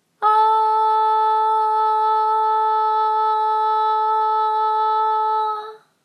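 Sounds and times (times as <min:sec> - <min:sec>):
long vocal tone: 0:00.2 - 0:06.0.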